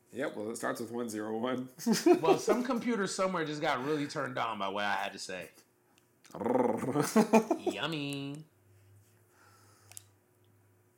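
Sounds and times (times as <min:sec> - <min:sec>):
speech: 0:00.2 - 0:05.7, 0:06.3 - 0:08.5
laughter: 0:01.8 - 0:02.9, 0:06.9 - 0:07.8
dog growling: 0:06.3 - 0:07.2.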